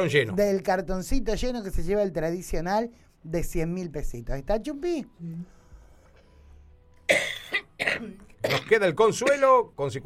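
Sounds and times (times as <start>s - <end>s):
speech: 0.0s - 5.6s, 8.0s - 10.0s
person calling numbers at a bingo draw coughing: 7.1s - 8.8s.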